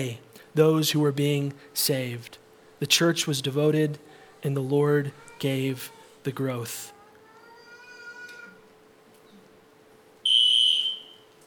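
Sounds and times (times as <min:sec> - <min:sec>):
speech: 0:00.0 - 0:07.0
fire alarm in a church beeping: 0:10.2 - 0:11.4.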